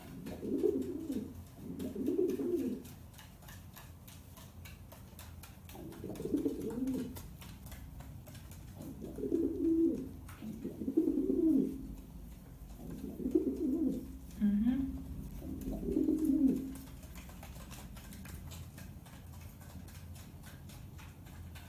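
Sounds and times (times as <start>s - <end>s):
pigeon cooing: 0.0s - 3.0s, 5.7s - 7.2s, 8.8s - 12.0s, 12.7s - 18.2s.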